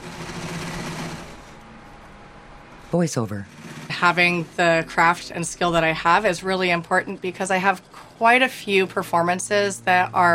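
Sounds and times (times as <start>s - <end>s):
sewing machine running: 0.0s - 1.6s, 3.5s - 4.5s
speech: 2.9s - 10.3s.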